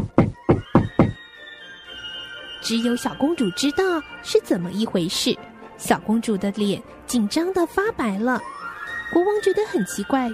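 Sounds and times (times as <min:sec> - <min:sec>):
knocks on the main door outside a dining hall: 0:00.0 - 0:01.2
speech: 0:02.6 - 0:10.3.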